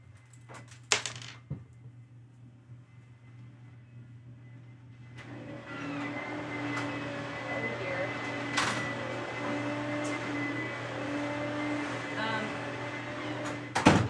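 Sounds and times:
vacuum cleaner running in another room: 5.2s - 13.6s.

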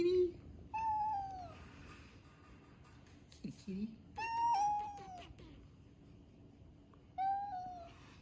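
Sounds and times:
female cat meowing: 0.7s - 1.6s, 4.2s - 5.6s, 7.2s - 8.0s.

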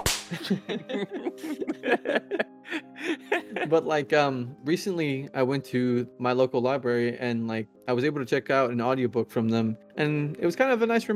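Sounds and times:
whip crack: 0.0s - 0.5s
laugh-like vocal sounds: 0.3s - 3.8s
speech: 0.3s - 11.1s.

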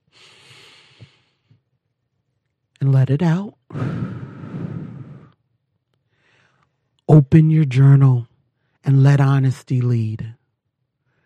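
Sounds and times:
deep breath drawn in during a guided reflection exercise: 0.0s - 1.6s, 3.7s - 5.4s, 6.1s - 6.7s
speech: 2.8s - 4.2s, 7.3s - 10.4s.

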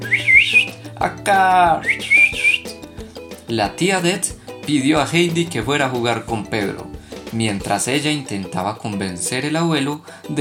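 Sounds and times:
goatherd boy whistling to his goats: 0.0s - 0.8s, 1.8s - 2.8s
speech: 1.0s - 2.1s, 3.5s - 10.3s.

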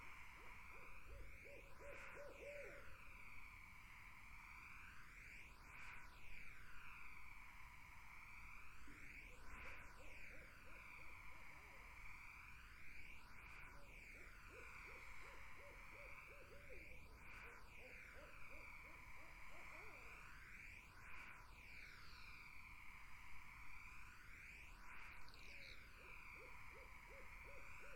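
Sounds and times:
insects droning in a summer wetland: 0.0s - 27.9s
barred owls hooting in a summer wetland: 0.4s - 3.0s, 14.5s - 20.2s, 26.0s - 27.9s.

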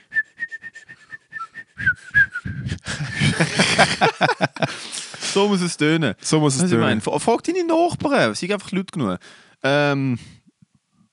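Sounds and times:
person whistling a continuous wavering tune: 0.0s - 2.7s
laughter: 2.8s - 5.4s
speech: 3.4s - 4.8s, 5.4s - 10.4s.

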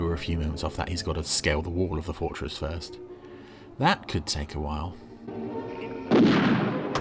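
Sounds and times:
speech: 0.2s - 3.1s, 3.8s - 5.6s
gas grenade fired into a control room inside a fortress: 6.1s - 6.9s.

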